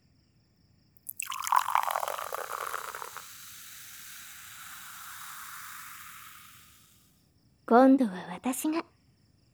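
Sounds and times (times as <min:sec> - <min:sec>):
liquid pouring in a steady stream: 0:01.0 - 0:07.0
speech: 0:07.7 - 0:09.0.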